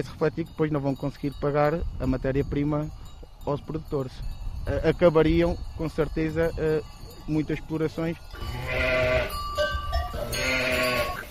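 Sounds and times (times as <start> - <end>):
speech: 0.0 - 9.0
Bordaleira dairy sheep bleating: 8.4 - 9.4, 10.2 - 11.3.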